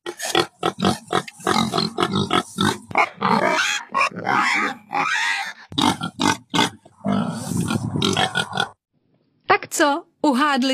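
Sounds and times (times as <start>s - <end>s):
pig grunting and snorting: 0.0s - 8.8s
speech: 10.6s - 10.7s.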